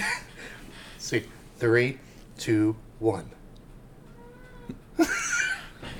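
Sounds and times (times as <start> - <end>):
speech: 1.1 - 3.4, 4.7 - 5.2
female cat meowing on cue: 4.1 - 4.8
laughter: 5.0 - 5.9.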